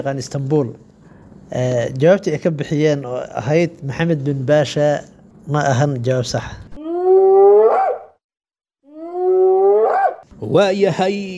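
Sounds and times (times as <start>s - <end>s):
speech: 0.0s - 6.6s, 10.4s - 11.3s
hyena howling sound effect: 6.8s - 8.2s, 8.9s - 10.2s.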